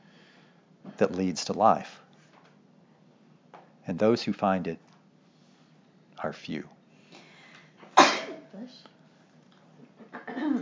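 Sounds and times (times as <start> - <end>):
speech: 1.0 - 2.0, 3.9 - 4.9, 6.2 - 6.8, 8.6 - 8.9
sneeze: 8.0 - 8.5, 10.3 - 10.6.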